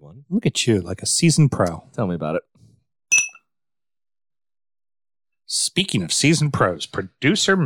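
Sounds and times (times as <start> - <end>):
speech: 0.3 - 2.5, 5.5 - 7.6
glasses clinking in a toast: 3.1 - 3.4.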